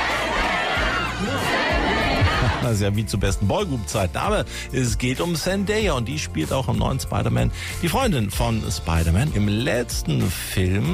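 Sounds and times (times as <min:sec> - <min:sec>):
large crowd of fans cheering and screaming at a premiere: 0:00.0 - 0:02.7
speech: 0:02.6 - 0:10.9.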